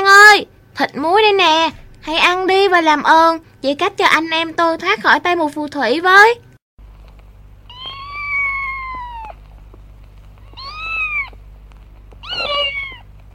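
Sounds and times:
speech: 0:00.4 - 0:06.5
cat meowing: 0:07.7 - 0:09.5, 0:10.4 - 0:11.4, 0:12.2 - 0:13.1.

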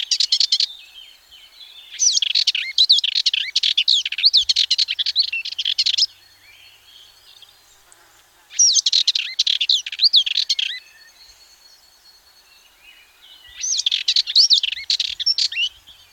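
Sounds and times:
Sardinian warbler singing fast harsh chattering notes: 0:01.8 - 0:11.4, 0:13.3 - 0:16.1.

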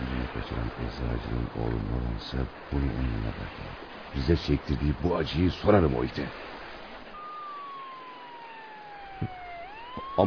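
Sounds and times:
speech: 0:00.4 - 0:06.6, 0:09.2 - 0:09.4
faint police car siren: 0:07.1 - 0:10.2.

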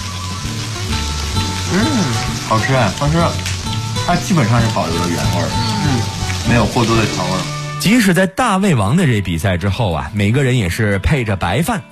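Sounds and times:
mushrooms, vegetables and duck gizzard sizzling in duck fat: 0:00.0 - 0:08.1
speech: 0:02.5 - 0:11.8.

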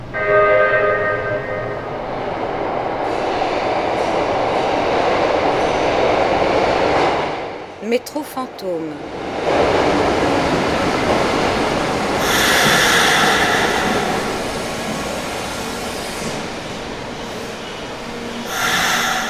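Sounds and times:
metro train standing in a station rumbling and hissing: 0:00.0 - 0:07.8, 0:09.1 - 0:19.2
speech: 0:08.0 - 0:10.1.

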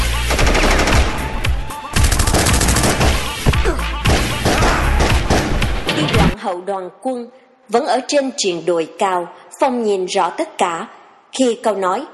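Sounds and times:
machine-gun volley in a tri-border region: 0:00.3 - 0:03.4, 0:04.0 - 0:05.7
speech: 0:06.5 - 0:12.1.

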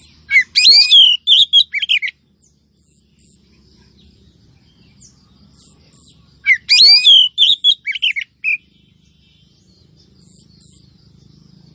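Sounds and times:
female Oriental magpie-robin calling: 0:00.3 - 0:02.1, 0:06.4 - 0:08.6.

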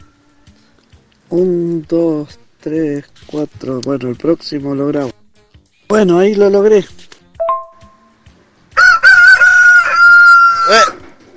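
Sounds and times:
speech: 0:01.3 - 0:05.2, 0:05.9 - 0:07.0
rooster crowing among a flock of hens and roosters: 0:08.7 - 0:11.2.

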